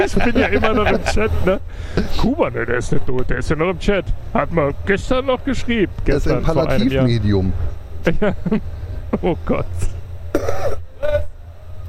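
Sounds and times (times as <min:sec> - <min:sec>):
laughter: 0:00.0 - 0:02.1, 0:08.0 - 0:09.6
speech: 0:00.0 - 0:10.0
low steady hum: 0:00.0 - 0:11.8
person clearing their throat: 0:10.3 - 0:11.3.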